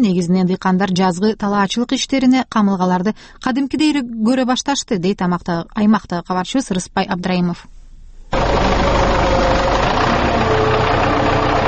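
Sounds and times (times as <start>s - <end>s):
speech: 0.0s - 7.8s
farm tractor engine running: 8.3s - 11.6s.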